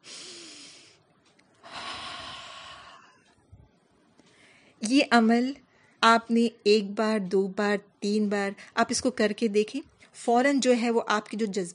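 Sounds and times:
deep breath in through the nose and out through the mouth: 0.0 - 1.0, 1.6 - 3.3
speech: 4.8 - 11.7.

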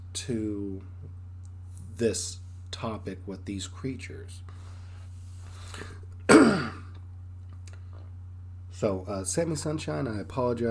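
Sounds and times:
quiet hum: 0.0 - 10.6
speech: 0.2 - 0.9, 2.0 - 4.6, 8.8 - 10.6
throat clearing: 6.3 - 7.0.

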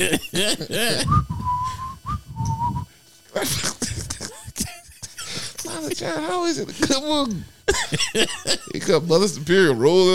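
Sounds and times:
laughter-like chatter: 0.0 - 1.1, 3.4 - 5.6, 7.7 - 8.8
speech: 0.0 - 1.5, 6.0 - 10.1
priest whistling a melody in a church: 1.1 - 2.9.

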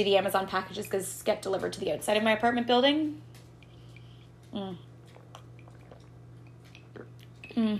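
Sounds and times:
speech: 0.0 - 3.4, 4.5 - 4.9, 7.6 - 7.7
steady low electrical hum: 0.0 - 7.7
person gulping Coca-Cola poured over ice: 4.5 - 7.7.

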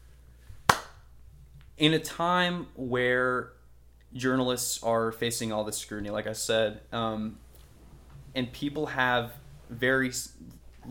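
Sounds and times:
single sharp hand clap in a quiet room: 0.7 - 1.0
speech: 1.8 - 7.4, 8.4 - 10.8.

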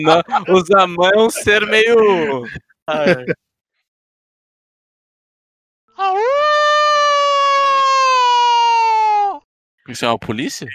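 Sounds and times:
laughter: 0.0 - 3.4
speech: 0.0 - 3.4, 9.9 - 10.7
human voice imitating a wolf howl: 6.0 - 9.4.

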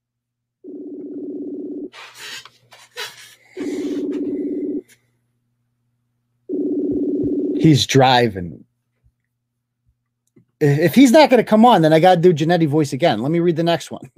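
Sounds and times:
outgoing phone call ringback tones: 0.6 - 1.9, 3.6 - 4.9, 6.5 - 7.6
speech: 7.6 - 8.7, 10.6 - 14.1.

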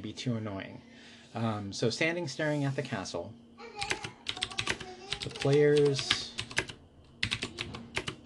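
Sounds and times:
speech: 0.0 - 3.9, 5.2 - 6.2
typing on a mechanical keyboard: 3.8 - 8.2.

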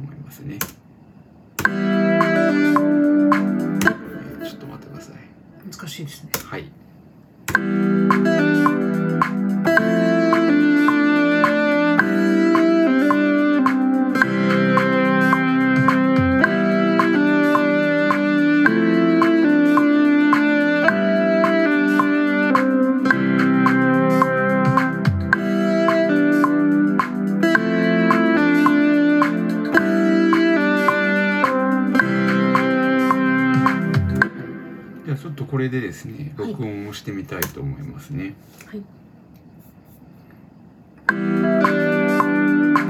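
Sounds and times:
speech: 0.3 - 0.8, 6.0 - 6.8, 37.3 - 39.0
bright synthesizer lead melody: 1.6 - 5.5, 7.5 - 35.1, 41.1 - 42.8.

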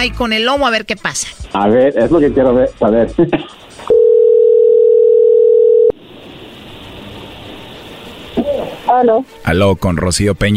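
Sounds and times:
speech: 0.0 - 4.0, 8.9 - 10.5
telephone ringback tone while placing a call: 3.9 - 6.0
quiet telephone line hiss: 6.0 - 10.3.

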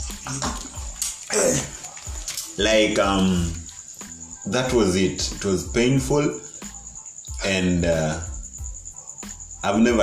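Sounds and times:
water running or pouring in uneven gushes: 0.0 - 5.3
speech: 0.2 - 1.7, 2.6 - 3.6, 4.4 - 6.4, 7.4 - 8.3, 9.6 - 10.0.

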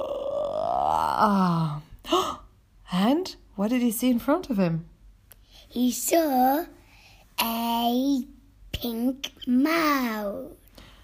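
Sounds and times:
person imitating a morning yawn: 0.0 - 2.4
speech: 0.8 - 2.2, 3.6 - 4.9, 5.7 - 6.8, 7.4 - 10.6.

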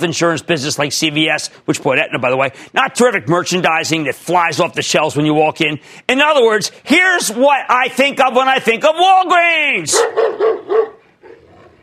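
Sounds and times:
speech: 0.0 - 11.0
dog barking: 9.9 - 11.7.

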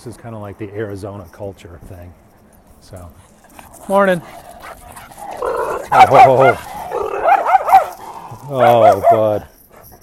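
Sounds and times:
speech: 0.0 - 2.2, 2.8 - 4.5, 5.4 - 6.7, 8.5 - 9.6
dog yelping and whining: 4.6 - 10.0
dog barking: 5.6 - 9.4.

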